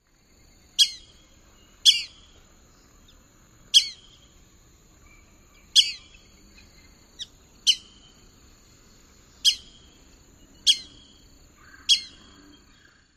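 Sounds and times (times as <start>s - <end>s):
bird p'ew alarm calls: 0.8s - 2.2s, 3.7s - 4.2s, 5.6s - 6.3s, 7.2s - 8.1s, 9.4s - 9.8s, 10.6s - 12.6s.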